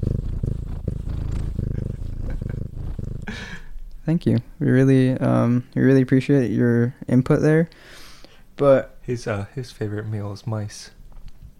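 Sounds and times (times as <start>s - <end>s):
domestic cat purring: 0.0s - 4.5s
speech: 4.0s - 8.0s, 8.6s - 11.0s.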